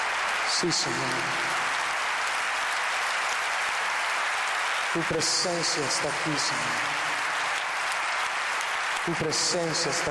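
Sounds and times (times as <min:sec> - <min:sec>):
audience applauding: 0:00.0 - 0:10.0
speech: 0:00.5 - 0:01.7, 0:04.9 - 0:07.1, 0:09.0 - 0:10.0.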